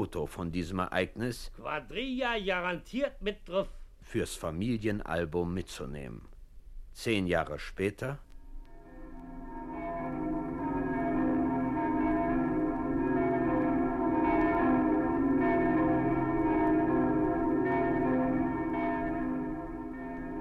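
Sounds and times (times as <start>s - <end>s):
speech: 0.0s - 6.3s, 7.0s - 8.3s
cathedral bells ringing over the city in Berlin during a funeral procession: 8.7s - 20.3s.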